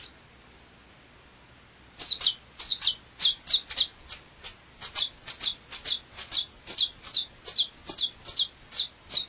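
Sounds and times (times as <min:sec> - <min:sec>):
double-collared seedeater singing: 0:02.0 - 0:09.2.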